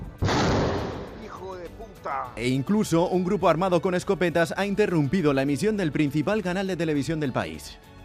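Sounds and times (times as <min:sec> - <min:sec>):
loud explosion in Ecuador: 0:00.2 - 0:01.4
speech: 0:01.5 - 0:07.9.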